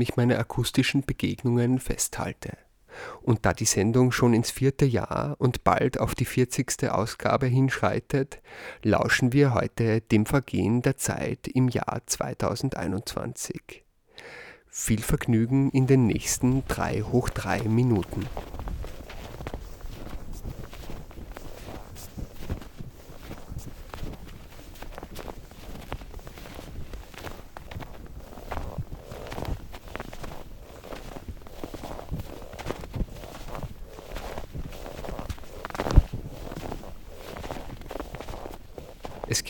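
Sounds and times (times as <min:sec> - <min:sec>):
speech: 0:00.0 - 0:18.7
footsteps crunching in snow: 0:15.5 - 0:39.4.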